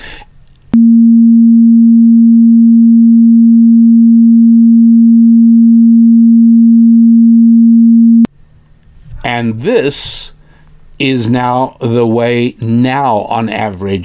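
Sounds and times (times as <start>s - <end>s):
steady pure sine tone of about 230 hertz: 0.8s - 8.3s
speech: 9.4s - 10.3s, 11.0s - 14.0s.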